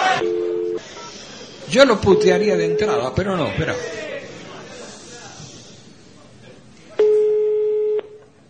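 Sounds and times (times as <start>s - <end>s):
telephone busy tone after the other party hung up: 0.2s - 0.8s, 7.0s - 8.2s
speech: 1.7s - 4.1s.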